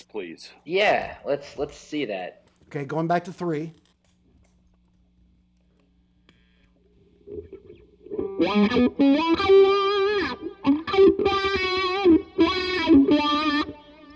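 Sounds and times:
speech: 0.0 - 3.8, 8.4 - 9.9
distorted electric guitar playing through a wah pedal: 7.2 - 14.1.

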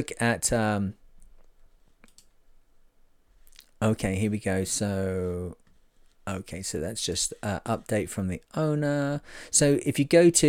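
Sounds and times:
speech: 0.0 - 1.0, 3.8 - 5.6, 6.3 - 10.4
quiet room hum: 0.0 - 10.4
computer mouse clicks: 1.2 - 2.4.

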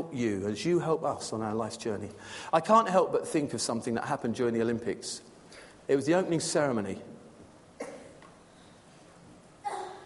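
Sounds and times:
speech: 0.1 - 5.3, 5.9 - 7.1
sneezes: 7.8 - 8.2, 9.6 - 10.0.

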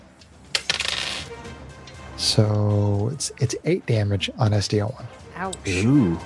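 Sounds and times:
two dice rolling on a hard table in a tabletop game: 0.5 - 1.3
speech: 2.2 - 6.2.

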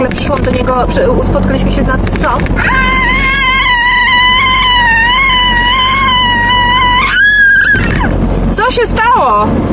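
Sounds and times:
speech: 0.1 - 3.1, 8.7 - 9.7
loud high-pitched scream: 2.6 - 8.2.

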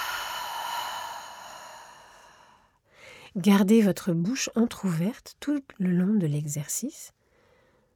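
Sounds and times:
long steady breath out through the mouth during a guided breathing exercise: 0.0 - 2.6
speech: 3.4 - 7.2.

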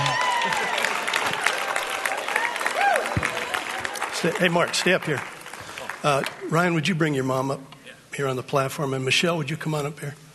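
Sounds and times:
scattered cheers and whoops from audience: 0.0 - 4.0
large audience clapping: 0.0 - 6.8
speech: 4.2 - 5.4, 6.0 - 10.2.

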